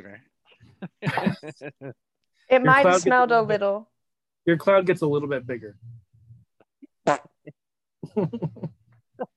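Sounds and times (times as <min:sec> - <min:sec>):
speech: 0:00.8 - 0:05.9, 0:07.1 - 0:08.8
wet buzzing fart noise made with the mouth: 0:07.0 - 0:07.6.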